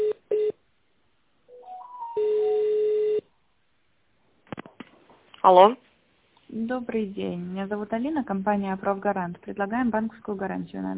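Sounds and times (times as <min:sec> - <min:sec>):
telephone beep during office call transfer: 0:01.5 - 0:03.2
speech: 0:05.4 - 0:05.9, 0:06.5 - 0:10.9.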